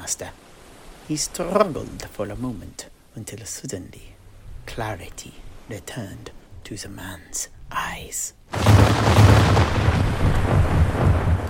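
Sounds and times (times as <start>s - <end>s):
speech: 0.1s - 0.5s, 1.1s - 9.2s
continuous barrage of cannon fire: 8.6s - 11.4s.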